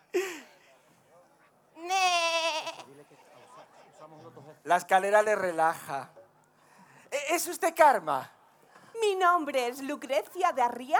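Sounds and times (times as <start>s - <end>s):
goat bleating: 1.8s - 2.9s
speech: 4.7s - 6.2s, 7.3s - 8.4s, 9.0s - 10.9s.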